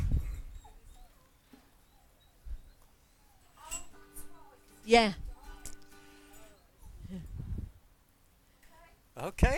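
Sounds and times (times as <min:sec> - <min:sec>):
dog whining and yipping softly: 0:00.2 - 0:05.4
speech: 0:04.9 - 0:05.2, 0:09.2 - 0:09.5.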